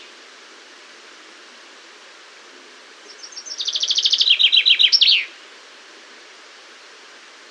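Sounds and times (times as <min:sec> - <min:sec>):
common chaffinch Fringilla coelebs singing: 0:03.1 - 0:05.4.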